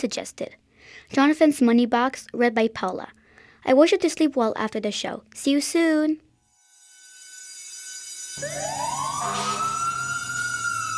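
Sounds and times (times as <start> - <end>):
speech: 0.0 - 6.2, 8.4 - 9.7
fire engine siren winding up to a wail: 8.4 - 10.9.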